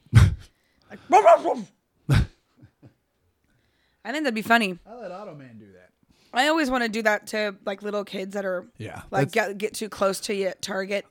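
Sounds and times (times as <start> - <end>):
speech: 1.0 - 2.2, 4.1 - 5.6, 6.3 - 11.0
person imitating dog barks: 1.0 - 2.3.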